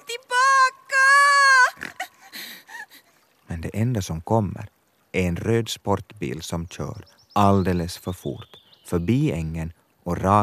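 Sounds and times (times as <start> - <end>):
voice imitating a little pig crying: 0.9 - 2.6
speech: 3.6 - 10.4.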